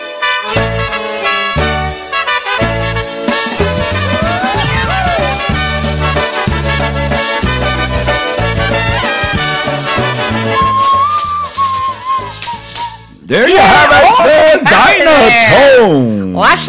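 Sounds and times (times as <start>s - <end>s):
bouncy polka band with oom-pah bass beat: 0.0s - 13.1s
slide whistle swooping up and down: 10.4s - 13.2s
speech: 13.3s - 16.6s.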